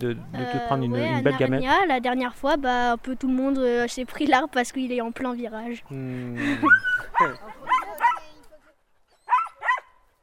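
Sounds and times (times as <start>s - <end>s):
speech: 0.0s - 7.6s
dogs barking with sharp high yapping barks: 6.6s - 8.3s, 9.2s - 10.1s.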